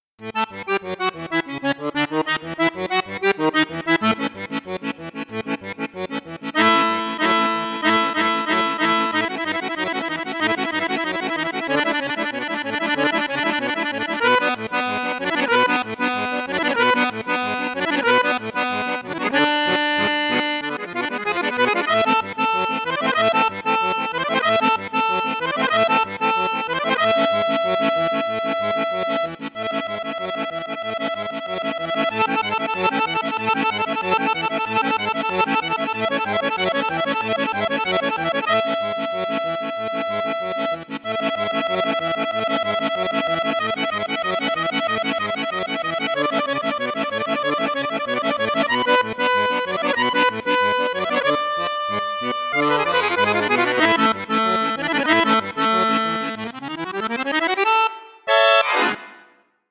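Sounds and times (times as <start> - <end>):
Cavagnolo orchestra accordion playing in bassoon flute register: 0.0 - 59.5.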